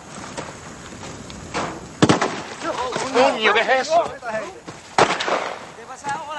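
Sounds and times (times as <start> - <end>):
faint cracks: 0.0 - 6.3
speech: 3.2 - 4.7
gunshots fired by a military patrol: 5.0 - 5.8.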